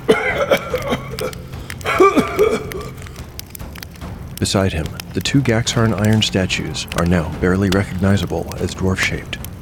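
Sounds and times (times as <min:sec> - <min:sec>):
man coughing painfully from inhaling smoke: 0:00.1 - 0:03.0
speech: 0:04.4 - 0:09.4.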